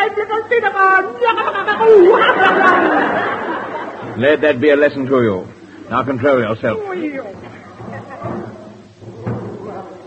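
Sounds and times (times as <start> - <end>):
busy background: 0.0 - 10.0
voices: 1.0 - 10.0
laughter: 1.2 - 4.6, 7.5 - 8.6
speech: 4.2 - 8.4
drum banged by a military man walking up the line: 7.3 - 9.9.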